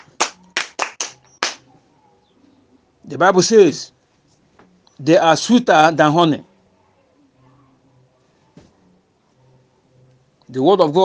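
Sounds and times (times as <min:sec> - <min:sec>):
audience hand claps: 0:00.0 - 0:01.7
speech: 0:03.0 - 0:04.0, 0:05.0 - 0:06.5, 0:10.5 - 0:11.0.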